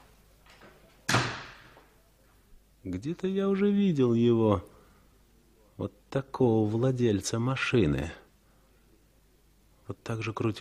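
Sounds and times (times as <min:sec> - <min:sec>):
door closing with a heavy thud: 0:01.1 - 0:01.8
speech: 0:02.8 - 0:04.7, 0:05.8 - 0:08.2, 0:09.9 - 0:10.6.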